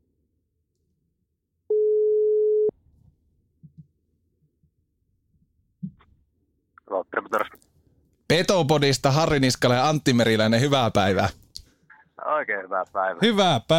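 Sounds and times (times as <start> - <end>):
telephone ringing tone while dialing: 1.7 - 2.7
speech: 7.2 - 7.6, 8.3 - 11.4, 12.4 - 13.7.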